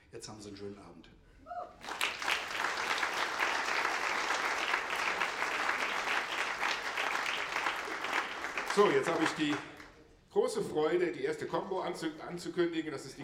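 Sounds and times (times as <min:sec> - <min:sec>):
speech: 0:00.1 - 0:02.0, 0:08.8 - 0:13.2
audience applause: 0:01.8 - 0:09.9.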